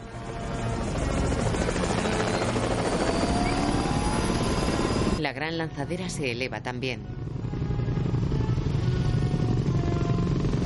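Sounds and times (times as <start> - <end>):
helicopter rotors spinning up: 0.6 - 5.2, 7.2 - 10.6
speech: 5.4 - 7.2.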